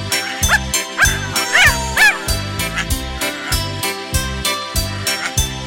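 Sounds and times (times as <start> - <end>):
dog barking: 0.1 - 3.7
bouncy musical beat: 0.1 - 5.5.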